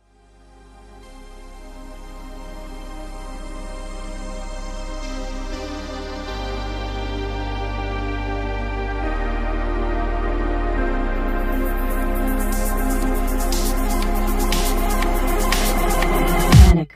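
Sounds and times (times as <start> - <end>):
music buildup: 1.1 - 16.9.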